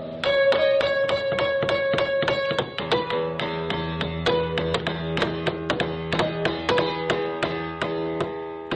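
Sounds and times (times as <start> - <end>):
hammer pounding a piano in a destructive art performance: 0.0 - 8.7.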